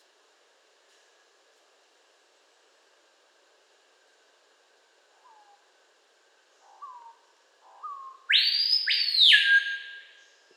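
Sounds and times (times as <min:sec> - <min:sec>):
screaming piha whistling: 0:07.8 - 0:10.2.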